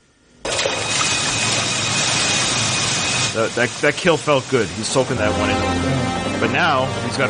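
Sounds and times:
helicopter rotor and engine roaring low overhead: 0.9s - 3.4s
speech: 3.4s - 7.2s.

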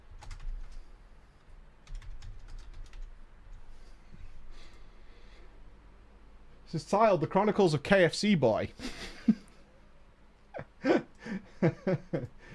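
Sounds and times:
typing on a computer keyboard: 0.2s - 0.8s, 1.8s - 3.1s
speech: 6.7s - 9.4s, 11.6s - 12.3s.

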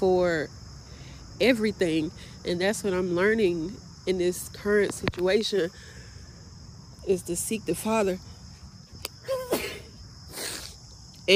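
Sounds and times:
speech: 0.0s - 0.6s, 1.4s - 6.0s, 7.0s - 8.3s
sneeze: 9.3s - 10.8s.

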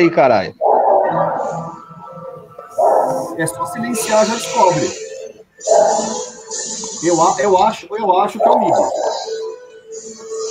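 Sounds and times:
speech: 0.0s - 1.8s, 2.8s - 5.0s, 5.6s - 9.1s
dog barking: 0.6s - 4.9s, 5.6s - 7.3s, 8.4s - 9.6s.

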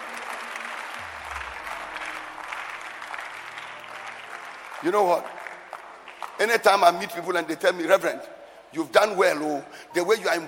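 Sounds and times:
audience clapping: 0.0s - 7.7s
speech: 4.8s - 5.4s, 6.4s - 10.4s.

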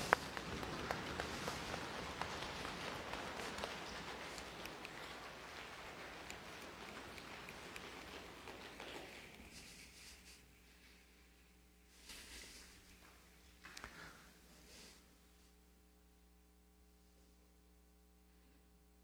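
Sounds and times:
feet stomping to imitate a rainstorm: 0.0s - 9.8s
hands clapping to imitate rain: 0.0s - 10.0s, 13.0s - 14.2s
hands rubbing to imitate rain: 0.0s - 10.6s.

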